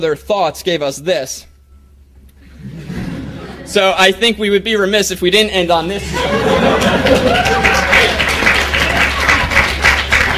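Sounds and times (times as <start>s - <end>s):
speech: 0.0s - 1.5s, 3.7s - 8.2s
laughter: 2.4s - 3.8s, 6.0s - 10.3s
crowd applauding: 6.2s - 10.3s.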